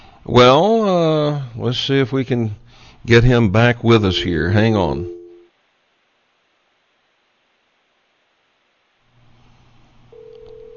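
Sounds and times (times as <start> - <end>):
speech: 0.3 - 5.2
hissing phone-line noise: 4.0 - 5.5, 10.1 - 10.7
telephone ringing tone on the line: 4.0 - 5.5, 10.1 - 10.7.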